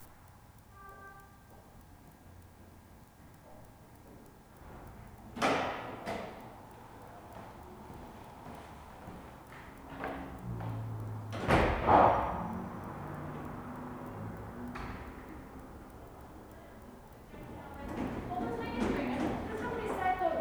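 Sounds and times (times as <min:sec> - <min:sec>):
fashion building foyer ambience in Toronto: 0:04.4 - 0:20.3.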